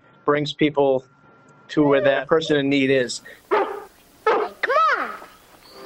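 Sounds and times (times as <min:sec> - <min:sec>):
speech: 0:00.3 - 0:03.6
dog giving a rising and falling yelp: 0:01.8 - 0:02.8, 0:03.5 - 0:05.3
dog barking: 0:03.5 - 0:04.6.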